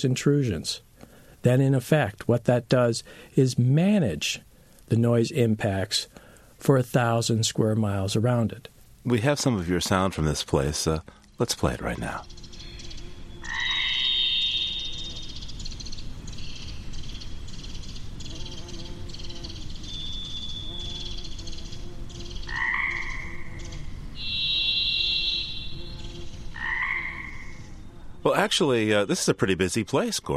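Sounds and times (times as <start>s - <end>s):
speech: 0.0s - 12.4s, 28.4s - 30.3s
Pacific chorus frogs croaking in a springtime chorus in the wilderness: 11.9s - 18.8s, 22.2s - 27.8s
varied thrush singing long high whistled notes: 12.4s - 15.9s, 24.2s - 25.8s.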